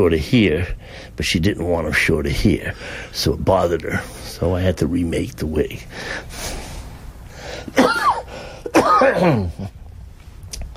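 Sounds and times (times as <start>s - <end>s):
speech: 0.0s - 6.6s, 8.9s - 9.8s
harsh hoarse coughing: 7.7s - 9.8s.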